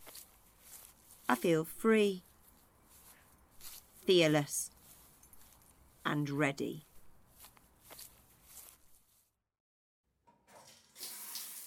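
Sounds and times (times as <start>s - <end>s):
speech: 1.3s - 2.3s, 4.1s - 4.7s, 6.0s - 6.9s
shower water running: 10.5s - 11.6s.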